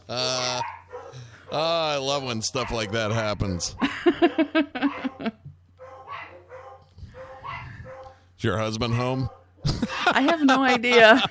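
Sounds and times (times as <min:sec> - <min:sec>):
speech: 0:00.1 - 0:00.7, 0:01.5 - 0:05.3, 0:08.4 - 0:11.2
dogs barking with sharp loud yaps: 0:00.4 - 0:03.9, 0:04.8 - 0:08.2, 0:09.2 - 0:09.8
laughter: 0:03.8 - 0:05.5, 0:09.6 - 0:11.2.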